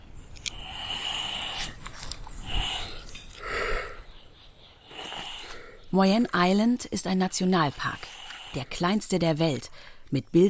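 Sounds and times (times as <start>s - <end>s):
hiss: 0.0s - 10.4s
giant tortoise breathing heavily: 0.4s - 6.0s, 7.6s - 10.0s
speech: 5.9s - 10.4s.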